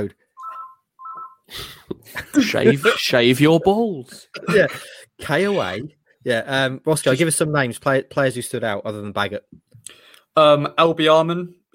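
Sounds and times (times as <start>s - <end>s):
speech: 0.0s - 0.2s, 1.5s - 11.7s
telephone ringing with electronic tones: 0.4s - 1.5s.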